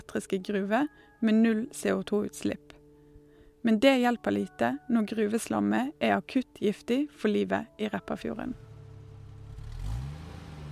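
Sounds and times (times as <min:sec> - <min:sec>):
speech: 0:00.1 - 0:02.8, 0:03.6 - 0:08.7
worn car engine revving and accelerating in Oslo: 0:08.6 - 0:10.7.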